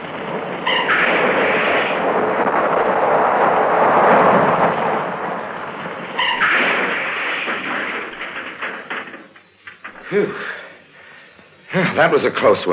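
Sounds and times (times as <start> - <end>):
car rolling off a cliff and crashing down a drop to the sea: 0.0 - 10.3
speech: 12.0 - 12.7.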